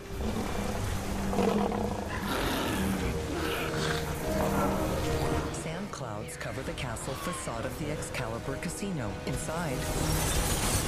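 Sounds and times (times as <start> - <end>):
tiger roaring and snarling while trying to leap out of a pit: 0.0 - 5.3
speech: 6.5 - 10.7.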